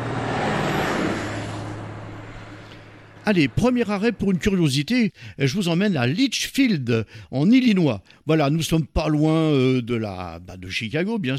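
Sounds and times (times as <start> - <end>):
bus engine rumbling on American roads: 0.0 - 5.4
road noise: 0.0 - 5.5
speech: 3.3 - 11.3.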